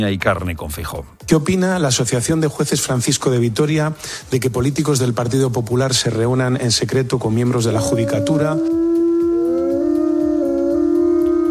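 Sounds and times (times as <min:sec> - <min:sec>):
speech: 0:00.0 - 0:08.8
soft rhythmic pulse: 0:07.3 - 0:11.5
wolves howling in a loud sustained chorus: 0:07.6 - 0:11.5.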